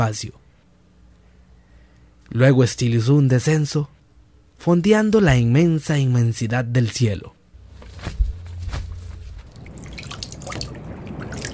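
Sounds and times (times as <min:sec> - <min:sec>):
speech: 0:00.0 - 0:00.4, 0:02.3 - 0:04.0, 0:04.6 - 0:07.4
low steady rumble: 0:00.0 - 0:11.5
sea water splashing and dripping: 0:09.4 - 0:11.5.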